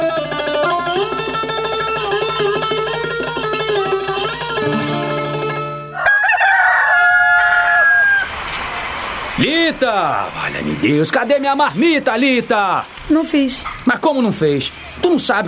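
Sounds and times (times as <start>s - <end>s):
steady tonal music: 0.0s - 6.0s
rooster crowing: 5.9s - 8.9s
speech: 9.8s - 15.4s.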